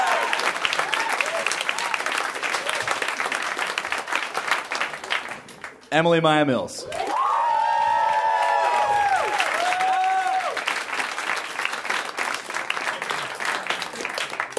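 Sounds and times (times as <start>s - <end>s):
crowd whooping and cheering: 0.0s - 3.1s, 6.9s - 10.7s
crowd applause: 0.0s - 5.8s, 6.9s - 14.5s
speech: 5.9s - 7.0s.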